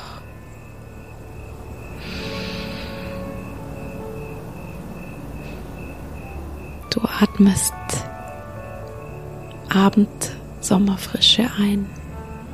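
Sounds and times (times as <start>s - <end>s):
crickets chirping on a summer evening: 0.0s - 12.5s
speech: 6.9s - 8.0s, 9.7s - 12.0s.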